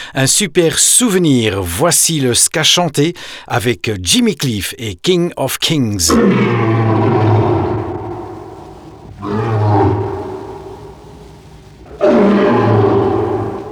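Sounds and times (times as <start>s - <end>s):
speech: 0.1s - 7.5s
lion roaring: 6.1s - 13.7s.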